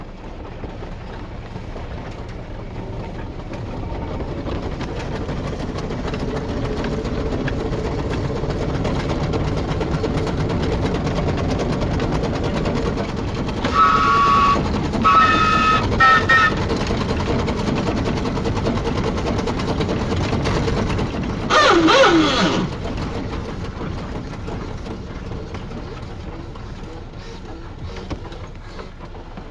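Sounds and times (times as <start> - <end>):
steam locomotive pump chugging, pumping water to the boiler: 0.0 - 29.5
brief high tonal squeals or whistles: 13.6 - 16.6.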